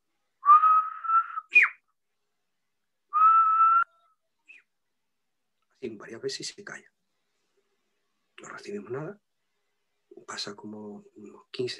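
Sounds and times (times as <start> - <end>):
human whistle used as a signal: 0.4 - 1.8, 3.1 - 4.7
speech: 5.8 - 7.0, 8.5 - 9.3, 10.2 - 11.7.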